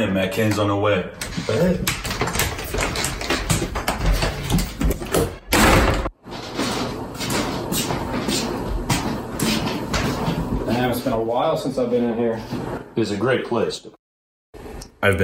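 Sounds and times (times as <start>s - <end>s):
speech: 0.0s - 2.4s, 11.0s - 14.0s, 15.0s - 15.2s
busy clattering room noise: 0.4s - 12.9s
sliding door opening and closing: 1.1s - 10.6s.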